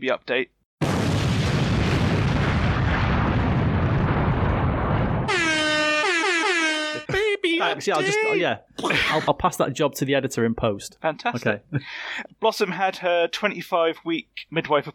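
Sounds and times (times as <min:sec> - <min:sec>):
speech: 0:00.0 - 0:00.9, 0:07.6 - 0:14.9
loud rumbling explosion: 0:00.8 - 0:05.4
air horns blaring: 0:05.3 - 0:07.1.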